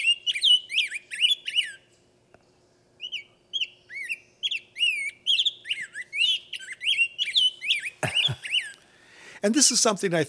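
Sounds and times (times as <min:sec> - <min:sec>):
rose-breasted grosbeak whistled song: 0:00.0 - 0:02.0, 0:03.0 - 0:08.8
speech: 0:09.4 - 0:10.2.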